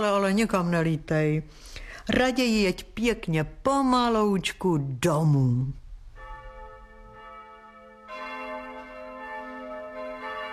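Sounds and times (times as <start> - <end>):
speech: 0.0 - 5.8
church bells ringing festively: 6.1 - 10.5.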